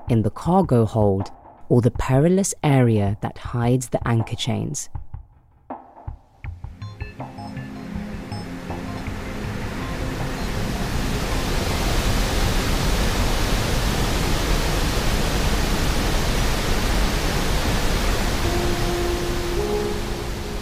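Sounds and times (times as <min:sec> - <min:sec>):
speech: 0:00.1 - 0:05.0
roaring ocean waves: 0:08.5 - 0:20.6.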